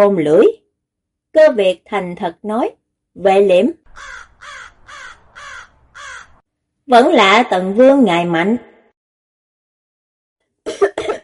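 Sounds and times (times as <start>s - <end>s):
speech: 0.0s - 0.6s, 1.3s - 4.6s, 6.9s - 8.7s
dry coughs: 10.7s - 11.2s.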